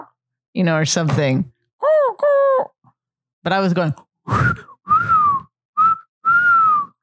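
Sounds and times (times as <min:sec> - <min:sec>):
speech: 0:00.5 - 0:01.5, 0:03.4 - 0:04.7
person whistling imitating a turkey vulture call: 0:04.3 - 0:07.0.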